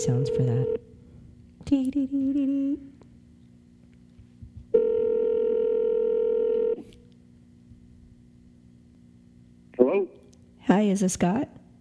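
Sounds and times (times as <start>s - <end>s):
speech: 0.0s - 0.8s, 1.7s - 2.9s, 10.7s - 11.6s
steady buzzy telephone line tone: 0.0s - 1.0s, 4.7s - 7.0s.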